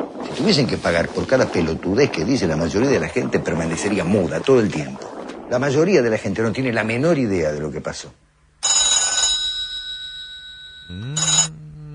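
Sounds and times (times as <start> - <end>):
speech: 0.4 - 8.2
telephone ringing in loud brassy bell bursts: 8.6 - 11.6.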